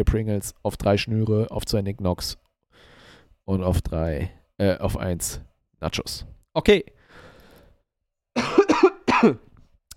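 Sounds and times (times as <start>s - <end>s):
speech: 0.0s - 2.4s, 3.5s - 7.0s, 9.2s - 9.5s
faint breath: 2.7s - 3.4s, 7.0s - 7.8s
harsh coughs: 8.4s - 9.5s.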